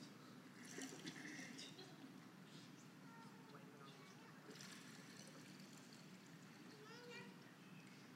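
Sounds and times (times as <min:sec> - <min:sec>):
faint murmur: 0:00.0 - 0:08.1
water pouring into a glass: 0:00.6 - 0:01.7, 0:04.4 - 0:06.7.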